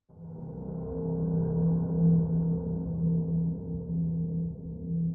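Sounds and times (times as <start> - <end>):
eerie single metallic bowed note howl with reverb: 0.1 - 5.0.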